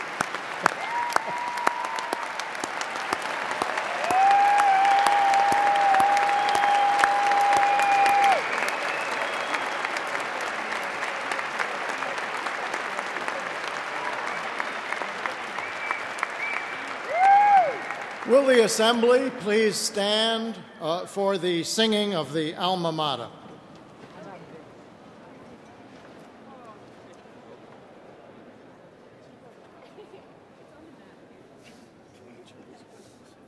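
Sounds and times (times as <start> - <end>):
large audience applauding for graduates in a big room: 0.0 - 20.4
speech: 18.4 - 23.4.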